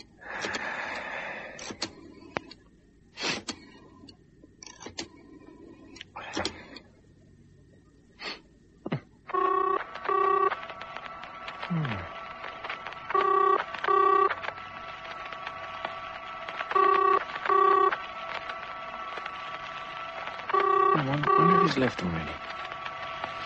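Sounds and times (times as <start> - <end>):
low steady hum: 0.0 - 23.4
telephone ringing in double bursts: 9.3 - 11.1, 13.1 - 14.4, 16.7 - 18.0, 20.4 - 22.4
speech: 21.9 - 22.4.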